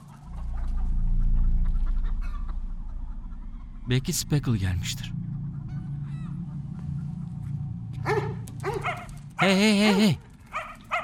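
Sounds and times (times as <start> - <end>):
low steady rumble: 0.0 - 9.4
speech: 3.9 - 5.2, 9.4 - 10.2
dog barking: 8.0 - 9.1, 9.9 - 11.0
person calling out: 9.4 - 10.2.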